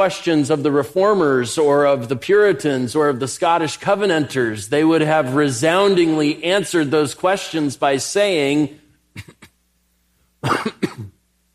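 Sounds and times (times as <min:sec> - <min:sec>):
speech: 0:00.0 - 0:09.3
cough: 0:09.2 - 0:09.6, 0:10.4 - 0:11.2.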